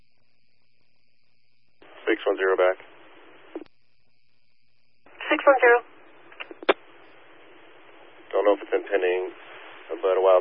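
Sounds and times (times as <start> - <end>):
crackly band-limited radio static: 1.8 - 4.1, 5.1 - 10.3
speech: 2.2 - 2.9, 5.3 - 5.9, 8.4 - 10.3.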